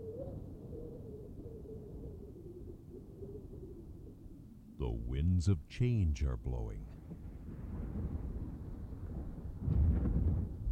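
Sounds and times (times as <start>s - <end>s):
speech: 4.8s - 7.0s
distant thunder rumbling: 7.0s - 10.7s.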